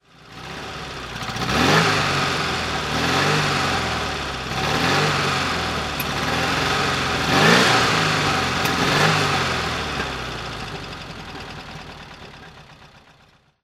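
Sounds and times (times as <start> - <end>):
Porsche 356C engine throttle: 0.3 - 11.0.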